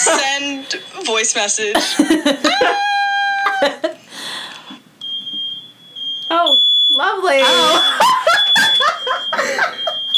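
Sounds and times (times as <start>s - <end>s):
home smoke alarm high-pitched tone set off by a burning pizza: 0.0s - 1.4s, 5.0s - 10.1s
speech: 0.1s - 2.9s
loud laughter from people: 1.8s - 4.0s, 7.4s - 10.1s.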